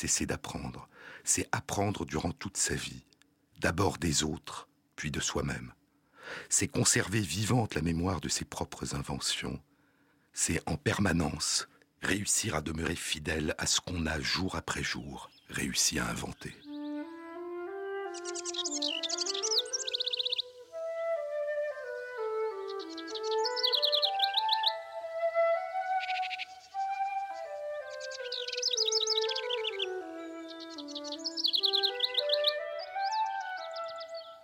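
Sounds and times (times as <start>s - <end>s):
speech: 0.0s - 9.7s, 10.3s - 16.6s
bird chirps and trills: 12.6s - 34.4s.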